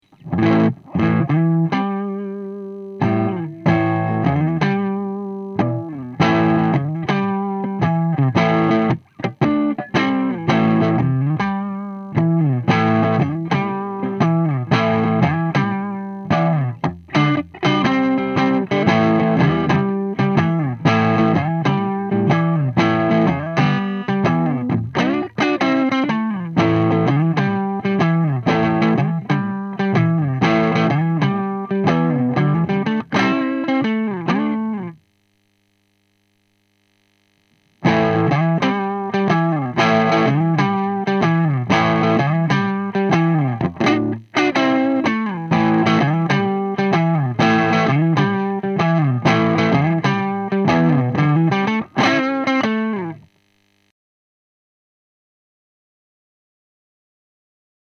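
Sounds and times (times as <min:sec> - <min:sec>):
clean SH4 bridge pickup guitar tone through an amplifier: 0:00.0 - 0:35.3, 0:36.8 - 0:53.3.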